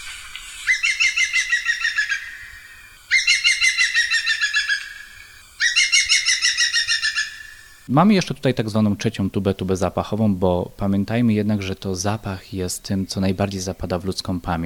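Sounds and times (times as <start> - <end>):
green woodpecker laughing call: 0.6 - 7.8
speech: 7.9 - 14.6.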